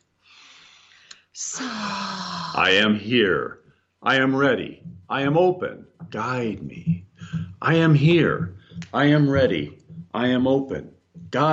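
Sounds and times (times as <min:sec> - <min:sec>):
deep breath in and sigh during a guided meditation: 0:00.2 - 0:01.3
speech: 0:01.4 - 0:01.9, 0:02.6 - 0:11.5.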